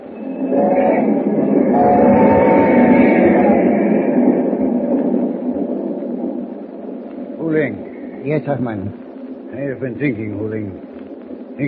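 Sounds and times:
grinding metallic whine of a train: 0.0 - 6.6
train roaring along the tracks: 0.0 - 11.6
speech: 7.5 - 10.9.

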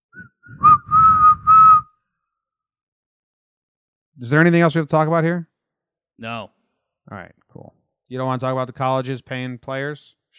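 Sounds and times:
shrill whistle blasts: 0.2 - 1.8
speech: 4.2 - 5.5, 6.2 - 10.3.

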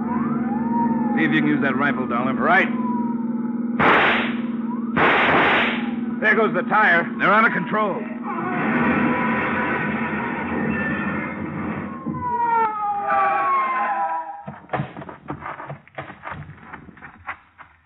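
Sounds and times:
loud roaring engine: 0.0 - 14.3
police car siren wailing: 0.0 - 14.7
speech: 1.2 - 2.9, 6.2 - 8.1
sharp clattering and banging: 14.5 - 17.8.

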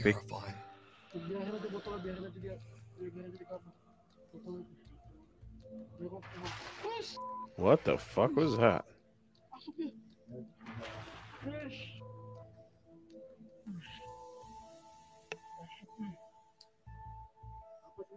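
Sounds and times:
speech: 0.0 - 4.9, 5.7 - 8.9, 9.6 - 12.1
splash in river water: 6.2 - 8.0, 10.6 - 12.0.

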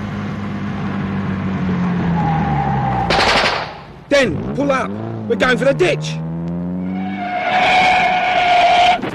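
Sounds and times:
car engine drone: 0.0 - 9.0
gunshot fired from a car: 3.1 - 3.9
speech: 4.2 - 6.2.

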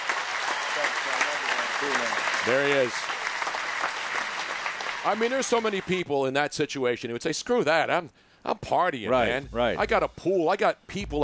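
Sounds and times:
audience applause: 0.0 - 6.0
speech: 0.8 - 3.2, 5.0 - 11.2.

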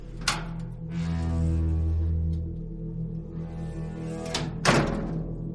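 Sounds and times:
metal gate creaking: 0.1 - 2.5, 3.5 - 5.4
metal gate swinging open with clanks: 4.3 - 5.4.

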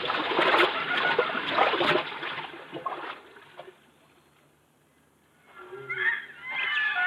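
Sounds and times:
people wading across a shallow river: 0.0 - 4.1.

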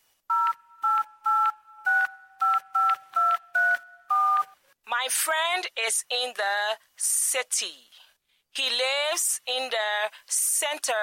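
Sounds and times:
electronic keypad beeps from a cell phone being dialed: 0.3 - 4.6
speech: 5.0 - 11.0.

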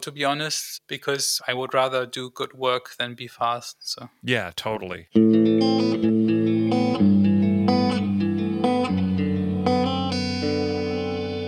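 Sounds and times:
speech: 0.0 - 6.2
electric guitar chords through a dual reverb pedal: 5.2 - 11.4.

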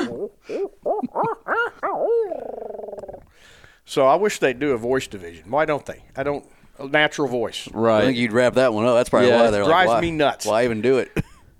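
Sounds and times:
owl hooting: 0.0 - 3.3
speech: 3.9 - 11.5.

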